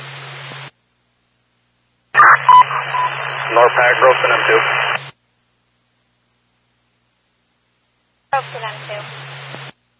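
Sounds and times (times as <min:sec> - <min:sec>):
radio static: 0:02.2 - 0:05.2, 0:08.4 - 0:09.8
speech: 0:03.5 - 0:04.8.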